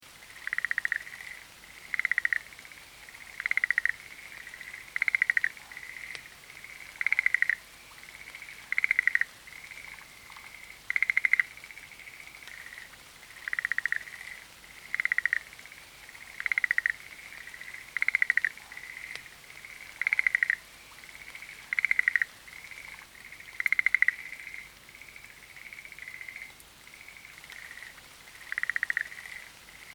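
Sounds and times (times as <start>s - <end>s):
Rhacophorus schlegelii frog calling: 0.2s - 29.9s.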